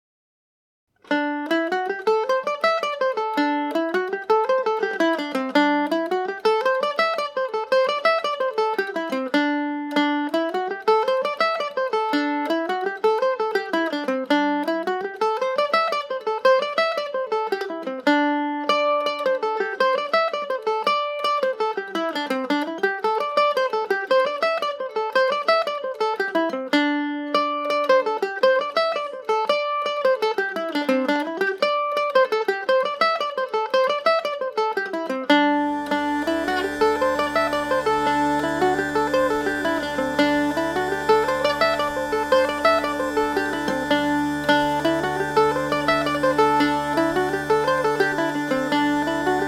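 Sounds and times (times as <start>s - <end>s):
G&O mandolin: 1.0s - 49.4s
pipe drone: 35.6s - 49.4s.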